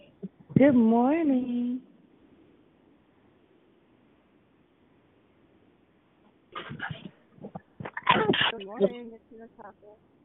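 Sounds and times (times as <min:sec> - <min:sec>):
speech: 0:00.6 - 0:01.9, 0:08.6 - 0:10.2
person sneezing: 0:06.6 - 0:07.2, 0:07.9 - 0:08.6.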